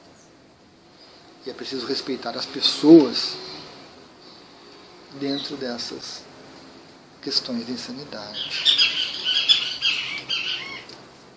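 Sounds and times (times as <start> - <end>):
speech: 1.4 - 3.6, 5.2 - 6.3, 7.2 - 8.9
monk parakeet squawking: 8.3 - 10.9.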